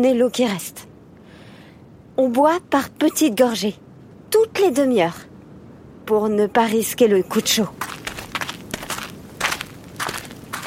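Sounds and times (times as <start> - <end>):
speech: 0.0 - 0.9, 2.2 - 5.3, 6.1 - 8.0
footsteps of several people crunching on dry ground: 7.7 - 10.6.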